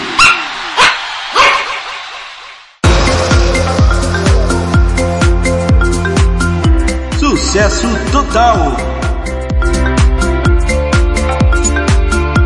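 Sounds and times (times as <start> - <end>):
dogs barking: 0.0 - 2.2
music with a steady beat: 2.8 - 12.4
speech: 7.6 - 9.0.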